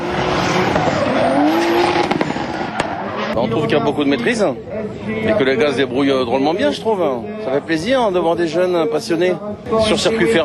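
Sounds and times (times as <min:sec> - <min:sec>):
tire squeal from cars drifting: 0:00.0 - 0:03.4
car engine roaring: 0:00.0 - 0:03.8
speech: 0:03.4 - 0:10.4.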